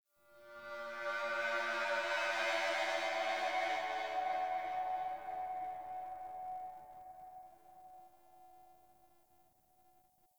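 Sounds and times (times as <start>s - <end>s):
ambient sentient moan: 0.4s - 8.0s.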